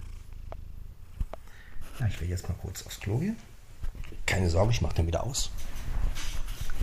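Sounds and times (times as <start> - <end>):
domestic cat purring lying on a blanket: 0.0 - 3.3
speech: 2.0 - 3.5, 4.3 - 6.3.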